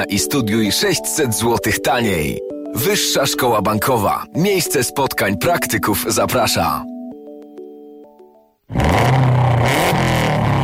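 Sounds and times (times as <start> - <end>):
speech: 0.0 - 6.9, 8.7 - 9.3
rally car 280-horsepower engine revving: 8.7 - 10.6.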